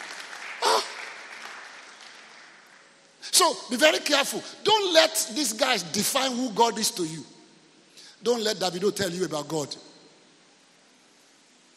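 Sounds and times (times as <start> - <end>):
audience clapping hands: 0.0 - 3.1
speech: 3.4 - 7.4, 8.2 - 9.9.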